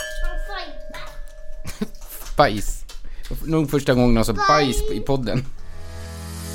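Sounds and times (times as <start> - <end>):
drinking glasses clinking in a toast: 0.0 - 2.2
speech: 1.8 - 5.6.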